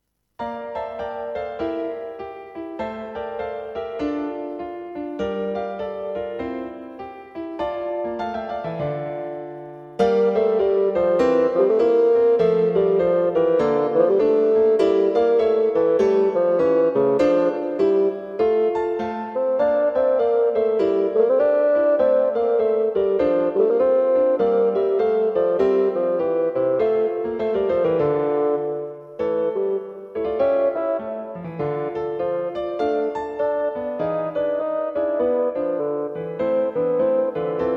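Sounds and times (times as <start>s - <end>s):
piano in a duet with bassoon: 0.0s - 37.7s
bassoon in a duet with piano: 10.0s - 37.7s.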